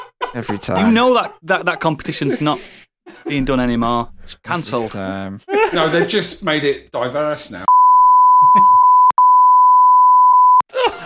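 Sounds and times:
laughter: 0:00.0 - 0:03.4, 0:04.7 - 0:06.4, 0:08.4 - 0:08.8
speech: 0:00.4 - 0:07.7
loud censor bleep tone: 0:07.7 - 0:10.6.

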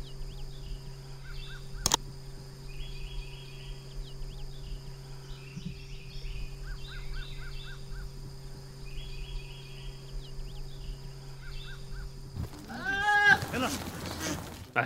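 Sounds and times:
faint bird chirps: 0:00.0 - 0:14.6
steady low hum: 0:00.0 - 0:14.8
goat in a tree bleating in the countryside of Essaouira, Morocco: 0:12.6 - 0:14.6.

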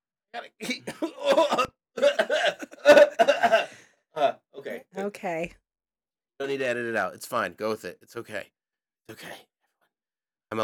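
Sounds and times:
speech: 0:00.4 - 0:01.5, 0:05.2 - 0:05.6, 0:06.4 - 0:09.5
person coughing harshly: 0:00.6 - 0:03.8.

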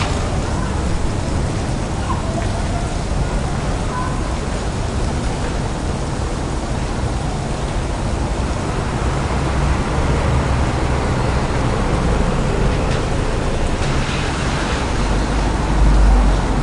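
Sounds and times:
rain falling in the city street: 0:00.0 - 0:16.6.

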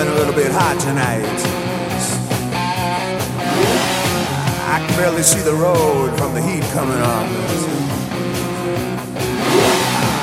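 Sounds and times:
troubled 1972 Lamborghini car engine running: 0:00.1 - 0:06.1, 0:06.8 - 0:10.2
speech: 0:00.4 - 0:02.2, 0:04.7 - 0:08.0.

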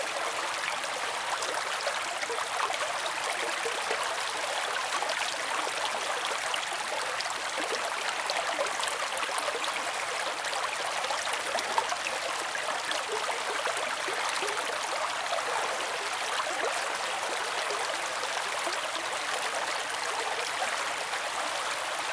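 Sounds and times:
bubbly brook babbling: 0:00.0 - 0:22.1.

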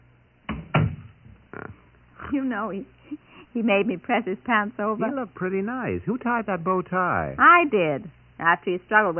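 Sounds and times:
door swinging shut with a solid thump: 0:00.5 - 0:01.4
speech: 0:02.3 - 0:09.1.

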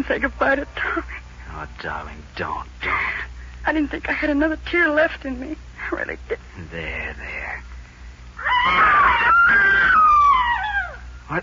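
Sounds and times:
speech: 0:00.0 - 0:07.6, 0:08.6 - 0:10.2
loud piercing wailing scream: 0:08.4 - 0:11.1.

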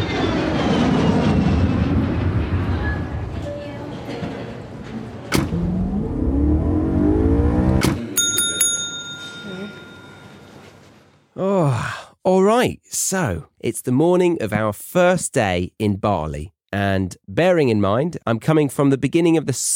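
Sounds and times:
airplane engine roar during landing: 0:00.0 - 0:03.6, 0:04.8 - 0:08.1
sharp thumps: 0:05.3 - 0:08.2
bright ringing bell-like chime: 0:08.2 - 0:10.8
speech: 0:12.3 - 0:19.7.

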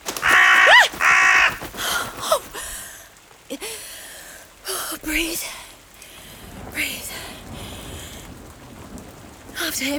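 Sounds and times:
crow cawing: 0:00.0 - 0:03.0
breathy human vocal sounds: 0:00.1 - 0:08.4
speech: 0:09.8 - 0:09.9.

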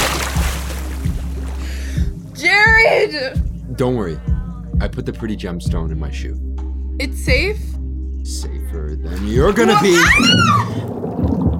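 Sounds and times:
water splashing and sloshing: 0:00.0 - 0:01.8, 0:09.1 - 0:11.5
speech: 0:02.8 - 0:11.0.

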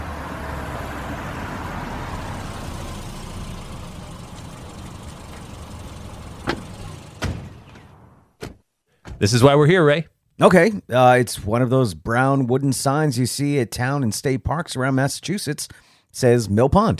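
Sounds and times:
car engine rumbling and settling to an idle: 0:00.0 - 0:08.3
sharp mechanical clunks: 0:06.4 - 0:09.2
speech: 0:09.2 - 0:16.9.

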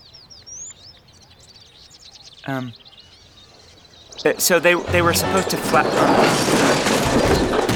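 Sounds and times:
birds chirping and tweeting: 0:00.0 - 0:07.7
speech: 0:02.4 - 0:02.9, 0:04.2 - 0:07.5.

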